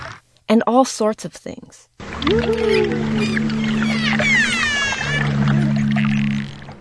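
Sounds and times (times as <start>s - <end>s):
speech: 0.5s - 3.6s
dolphin high squeaky whistles underwater: 2.2s - 6.6s.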